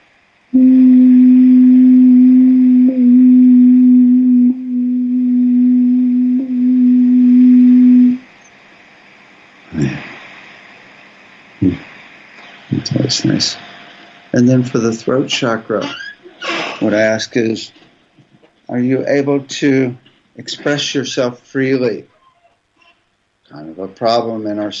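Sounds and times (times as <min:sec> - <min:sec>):
person humming a low tone as a heart chakra exercise: 0:00.6 - 0:08.2, 0:09.7 - 0:10.1, 0:11.6 - 0:11.8
speech: 0:13.2 - 0:13.6, 0:14.4 - 0:16.0, 0:16.9 - 0:17.8, 0:18.8 - 0:22.1, 0:24.0 - 0:24.7.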